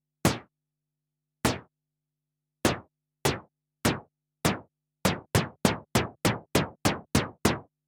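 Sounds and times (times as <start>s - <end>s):
synthesized snare drum: 2.7s - 7.7s.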